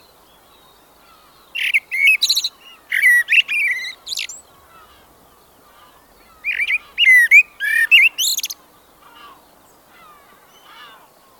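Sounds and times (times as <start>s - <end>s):
blackbird singing: 0.0s - 8.6s.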